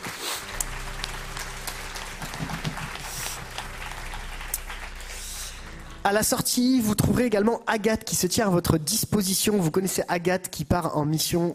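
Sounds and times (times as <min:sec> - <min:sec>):
crowd applauding: 0:00.0 - 0:07.4
low steady hum: 0:00.4 - 0:07.8
speech: 0:06.0 - 0:11.5.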